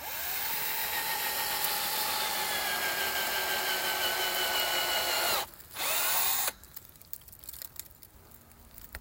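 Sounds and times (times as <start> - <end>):
power drill boring into a maple tree: 0.0 - 6.6.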